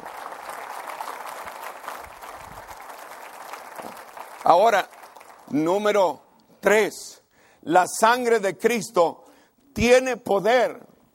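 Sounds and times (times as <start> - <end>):
crowd clapping loudly: 0.0 - 6.1
speech: 4.4 - 9.2, 9.8 - 10.8.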